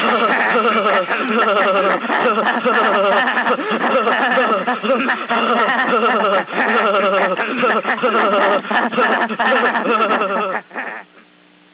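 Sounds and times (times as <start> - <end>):
fast laughter: 0.0 - 11.2.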